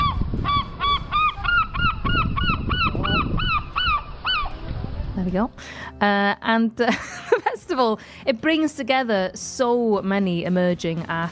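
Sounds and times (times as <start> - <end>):
seagulls calling: 0.0 - 4.7
speech: 5.3 - 7.2, 7.8 - 11.2.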